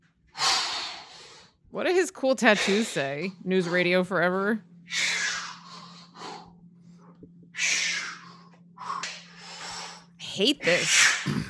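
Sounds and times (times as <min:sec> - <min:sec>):
man breathing heavily and snorting: 0:00.3 - 0:01.6, 0:04.9 - 0:10.2
low steady hum: 0:01.0 - 0:11.4
speech: 0:01.7 - 0:05.0, 0:10.4 - 0:11.4.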